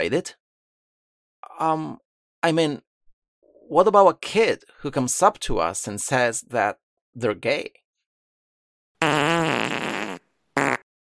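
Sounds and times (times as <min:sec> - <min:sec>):
speech: 0:00.0 - 0:00.4, 0:01.6 - 0:02.9, 0:03.7 - 0:07.8
comedic fart sound effect: 0:09.0 - 0:10.9.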